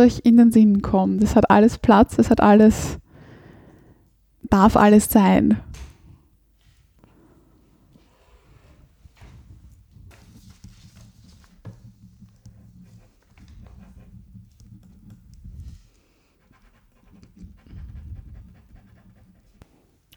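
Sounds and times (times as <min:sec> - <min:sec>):
speech: 0:00.0 - 0:03.0, 0:04.5 - 0:05.8
soft breathing: 0:02.8 - 0:04.2, 0:06.6 - 0:09.7, 0:15.6 - 0:16.6
pen scratching across paper during a free-writing exercise: 0:10.2 - 0:19.6.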